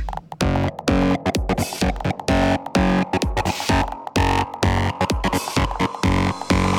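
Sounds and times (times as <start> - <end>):
electronic music with heavy distortion: 0.4 - 6.7.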